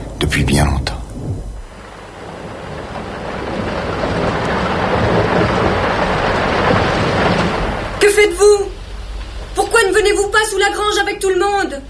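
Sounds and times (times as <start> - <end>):
deep rumbling thunder: 0.0 - 11.8
gusting wind: 0.0 - 11.8
heavy rain: 0.0 - 11.8
speech: 0.3 - 0.9, 10.4 - 11.8.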